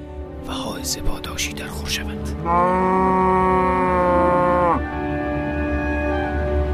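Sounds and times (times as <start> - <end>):
speech: 0.4 - 3.9
cow mooing: 2.4 - 6.6.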